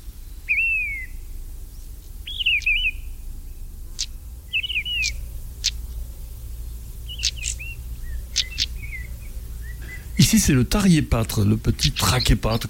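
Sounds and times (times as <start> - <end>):
steady low rumble of noise: 0.0 - 12.6
mistle thrush singing fluting whistled phrases: 4.2 - 12.6
speech: 10.3 - 12.6.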